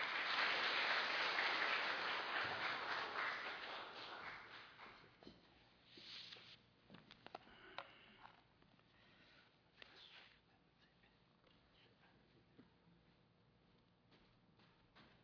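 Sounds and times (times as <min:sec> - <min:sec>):
church audience clapping to welcome a pastor: 0:00.0 - 0:05.3.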